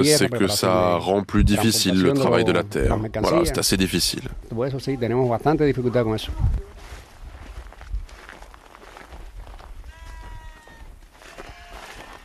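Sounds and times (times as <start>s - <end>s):
speech: 0.0s - 6.7s
rustling outdoor background: 1.6s - 12.2s
goats bleating among fruit trees: 9.9s - 12.2s.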